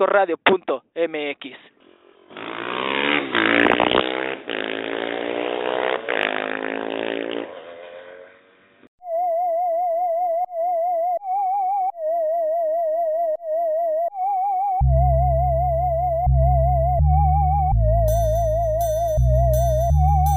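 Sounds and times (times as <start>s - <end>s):
speech: 0.0s - 4.2s
motor engine roaring and revving: 1.8s - 8.6s, 16.3s - 20.3s
wavering electronic tone: 9.0s - 20.3s.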